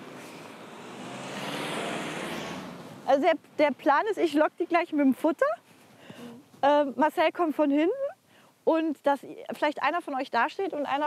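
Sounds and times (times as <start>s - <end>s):
car passing on a quiet village road: 0.0s - 3.1s
speech: 3.1s - 5.6s, 6.6s - 8.0s, 8.6s - 11.0s.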